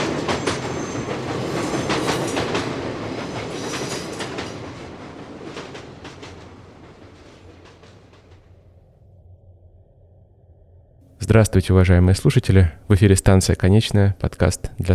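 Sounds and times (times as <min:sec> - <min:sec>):
train wheels clattering over rail joints: 0:00.0 - 0:08.6
train arriving at a terminal station: 0:00.0 - 0:09.1
speech: 0:11.3 - 0:14.9.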